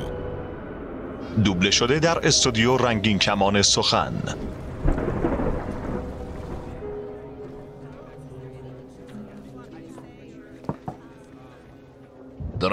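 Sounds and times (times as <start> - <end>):
steady wash of storm rain: 0.0 - 9.0
heavy roll of thunder booming: 0.2 - 8.4
speech: 1.4 - 4.6.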